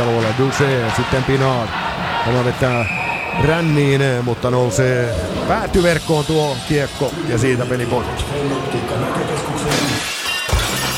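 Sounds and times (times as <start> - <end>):
speech: 0.4 - 9.8
dense noisy wash of sound: 3.5 - 8.8
glass shattering in a glazier's advert: 9.7 - 10.9.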